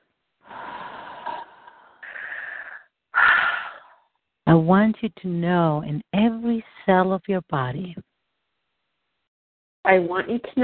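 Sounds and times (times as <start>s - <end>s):
deep wheezy breathing during a guided relaxation session: 0.4s - 4.0s
speech: 4.5s - 8.1s, 9.8s - 10.6s.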